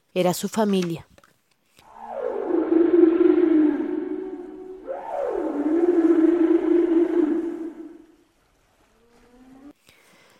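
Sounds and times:
speech: 0.2 - 1.1
whale moans sliding down in pitch: 1.8 - 8.2.

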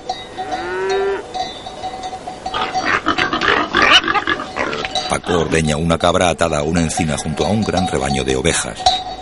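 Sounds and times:
cattle lowing among a herd of bulls in a holm-oak pasture: 0.4 - 1.3, 2.5 - 5.0
pigs grunting while feeding on acorns in a holm-oak pasture: 2.5 - 5.0
speech: 5.3 - 9.1.

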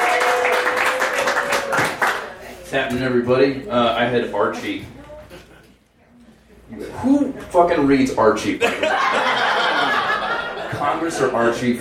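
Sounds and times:
crowd applauding: 0.0 - 2.4
speech: 2.7 - 5.0, 6.7 - 9.2, 10.8 - 11.7
laughter: 8.6 - 11.4.

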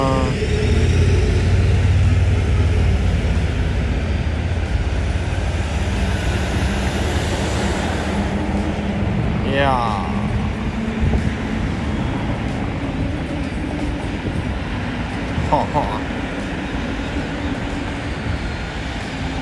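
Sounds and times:
heavy traffic of many cars and motorcycles driving past: 0.0 - 19.4
laughter: 15.4 - 16.2.

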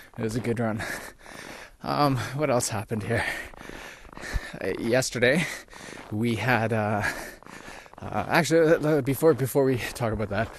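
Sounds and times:
speech: 0.2 - 1.2, 1.8 - 3.5, 4.5 - 7.2, 8.0 - 10.5
heavy winded breathing after a run: 0.8 - 2.4, 3.2 - 4.7, 5.4 - 6.2, 6.9 - 8.2.

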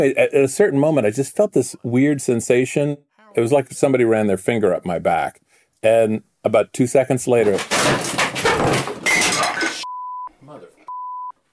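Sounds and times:
speech: 0.0 - 8.9
old chair collapsing: 7.4 - 9.8
person crashing to floor: 7.6 - 9.8.

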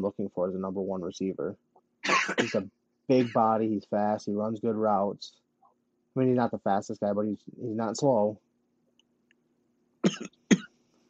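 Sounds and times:
faint low hum: 0.0 - 11.0
speech: 0.3 - 5.4, 6.2 - 8.4, 10.0 - 10.4
person coughing: 2.0 - 3.4, 10.0 - 10.8.

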